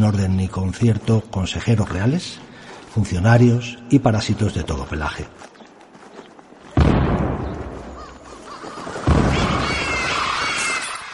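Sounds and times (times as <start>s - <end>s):
speech: 0.0s - 5.5s
heavy artillery cannon booms: 6.8s - 8.0s, 9.1s - 9.9s
faint high calls: 7.8s - 11.1s.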